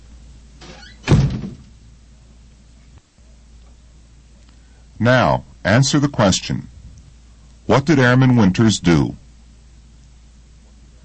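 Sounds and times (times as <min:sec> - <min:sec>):
door swinging shut with a solid thud: 0:00.6 - 0:01.8
speech: 0:05.0 - 0:06.7, 0:07.7 - 0:09.2.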